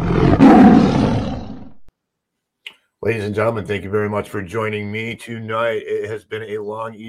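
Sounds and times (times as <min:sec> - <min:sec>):
deep tiger roar: 0:00.0 - 0:01.9
speech: 0:03.0 - 0:07.0.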